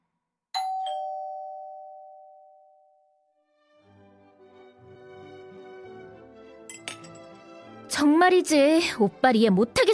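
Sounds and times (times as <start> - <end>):
doorbell of an old-fashioned mansion in Taradero chiming: 0.6 - 3.2
speech: 7.9 - 9.9.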